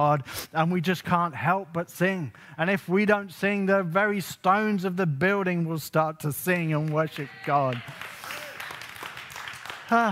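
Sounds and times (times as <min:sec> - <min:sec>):
speech: 0:00.0 - 0:08.1, 0:09.9 - 0:10.1
audience applauding during a sermon: 0:06.8 - 0:10.1.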